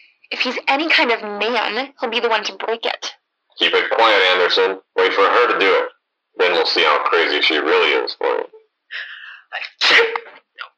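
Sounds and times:
speech: 0.4s - 10.4s
loud sneeze: 9.8s - 10.4s.

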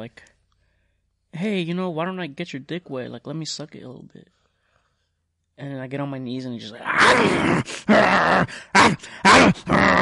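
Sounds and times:
speech: 0.0s - 0.3s, 1.4s - 4.4s, 5.6s - 10.0s
person imitating a dog growling and snarling: 6.8s - 10.0s.

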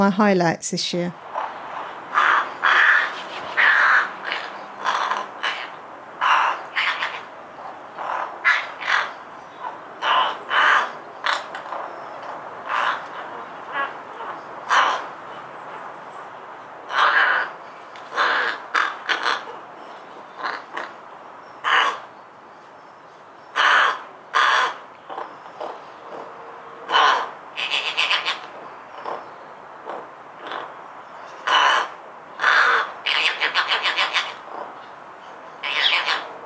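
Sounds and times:
speech: 0.0s - 1.3s
rooks cawing harshly: 1.3s - 11.8s, 12.6s - 15.3s, 16.8s - 19.6s, 20.3s - 21.0s, 21.6s - 22.1s, 23.5s - 25.8s, 26.8s - 29.2s, 29.9s - 30.8s, 31.4s - 34.5s, 35.6s - 36.3s.

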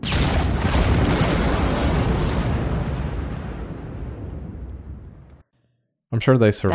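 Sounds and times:
loud explosion with heavy sustained rumble: 0.0s - 5.4s
speech: 6.2s - 6.7s.

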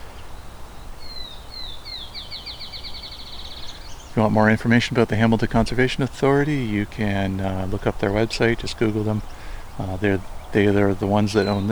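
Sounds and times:
field sparrow singing whistled notes and trill: 0.0s - 11.6s
low outdoor rumble at entrance of swamp conservation area: 0.0s - 11.6s
laughter: 4.1s - 11.6s
speech: 4.2s - 11.6s.

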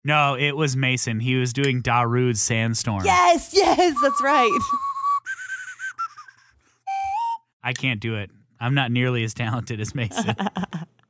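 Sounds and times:
speech: 0.0s - 4.9s, 7.7s - 10.9s
slide whistle being played: 3.9s - 7.6s
laughter: 9.9s - 10.9s.

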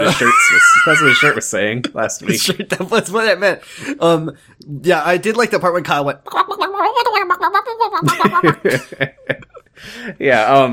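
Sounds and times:
laughter: 0.0s - 3.3s, 7.7s - 9.7s
speech: 0.1s - 10.7s
person imitating chicken clucking: 6.3s - 8.6s.

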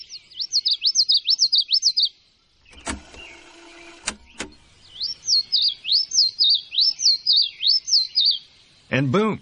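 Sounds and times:
bird song on tape played back at half speed: 0.0s - 9.4s
tape machine mechanical whirring and clunking: 2.6s - 4.7s.

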